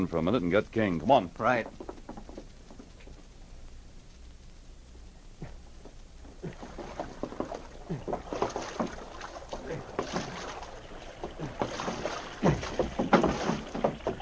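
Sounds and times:
speech: 0.0 - 1.9
canoe being paddled through water with splashes and drips: 6.2 - 14.2.

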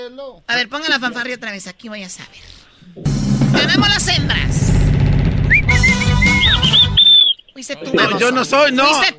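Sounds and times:
speech: 0.0 - 4.9, 7.6 - 9.1
person whistling a short wavering tune: 5.5 - 7.4.

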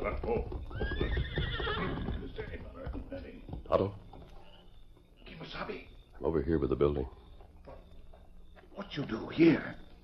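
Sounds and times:
horse hooves clip-clopping: 0.0 - 10.0
paint horse whinnying: 0.4 - 2.6
speech: 3.8 - 4.0, 6.5 - 7.2, 8.8 - 9.8.

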